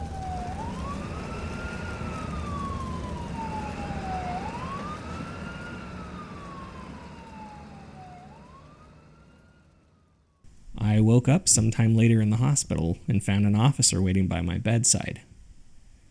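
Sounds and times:
emergency sirens wailing: 0:00.0 - 0:10.5
low rumble of traffic: 0:00.0 - 0:15.1
speech: 0:11.1 - 0:15.3.

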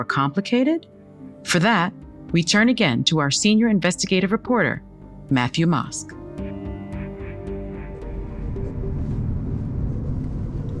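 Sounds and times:
speech: 0:00.0 - 0:06.2
car engine and road rumble on a rural road in Spotsylvania, Virginia: 0:08.5 - 0:10.7.

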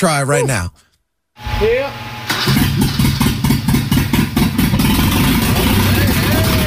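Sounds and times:
speech: 0:00.0 - 0:00.8, 0:01.6 - 0:02.0
old car engine cranking and running a rough idle: 0:02.2 - 0:06.6.

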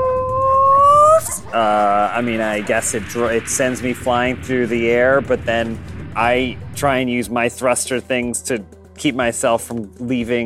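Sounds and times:
person's voice imitating a howling dog: 0:00.0 - 0:01.4
speech: 0:01.5 - 0:10.4.

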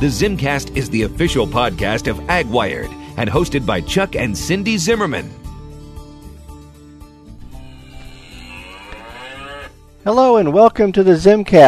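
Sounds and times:
speech: 0:00.0 - 0:05.4, 0:10.0 - 0:11.6
cow mooing: 0:07.4 - 0:09.8.

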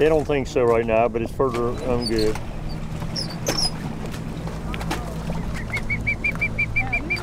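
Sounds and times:
speech: 0:00.0 - 0:02.5
steady low drone of a boat engine: 0:00.0 - 0:07.2
rescued bird squawking in a net: 0:05.4 - 0:07.2.

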